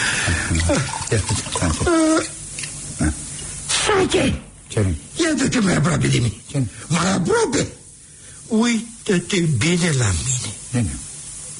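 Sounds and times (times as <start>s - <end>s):
speech: 0.3s - 2.4s, 4.0s - 7.8s, 8.5s - 11.1s
water pouring and splashing: 0.5s - 2.7s.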